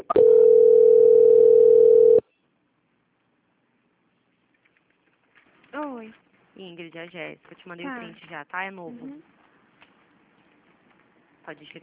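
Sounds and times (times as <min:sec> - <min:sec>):
telephone tone while a bank call is transferred: 0:00.0 - 0:02.2
speech: 0:06.8 - 0:09.4, 0:11.5 - 0:11.8.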